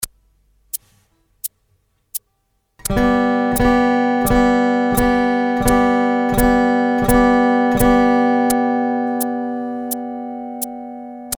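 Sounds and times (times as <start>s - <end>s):
guitar strumming G chords: 2.8s - 11.3s.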